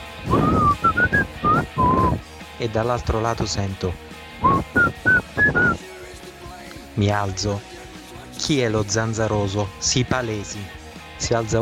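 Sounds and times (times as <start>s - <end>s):
person whistling in an open-plan office: 0.3s - 2.2s, 4.4s - 5.8s
speech: 2.6s - 4.7s, 7.0s - 7.8s, 8.5s - 11.6s.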